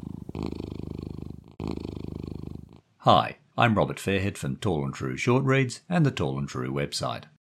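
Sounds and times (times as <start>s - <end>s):
cat purring: 0.0s - 3.0s
speech: 3.0s - 7.3s.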